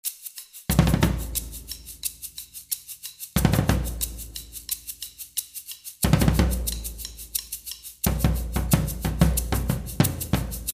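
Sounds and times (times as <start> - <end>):
batucada drumming: 0.3 - 10.7
tribal style bass: 0.7 - 2.6, 3.4 - 5.4, 6.0 - 10.7.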